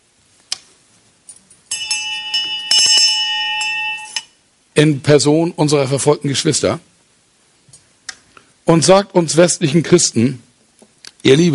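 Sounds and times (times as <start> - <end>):
bell struck with a bright metallic tone: 1.7 - 4.4
speech: 4.8 - 6.9, 8.7 - 10.5, 11.2 - 11.5.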